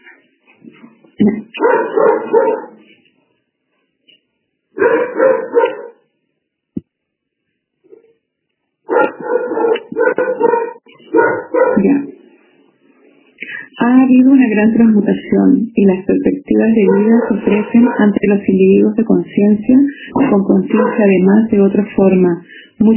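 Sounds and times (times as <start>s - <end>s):
speech: 1.2s - 2.7s, 13.8s - 22.9s
small female dog barking and yipping: 4.8s - 6.0s, 8.9s - 11.8s, 20.7s - 21.0s.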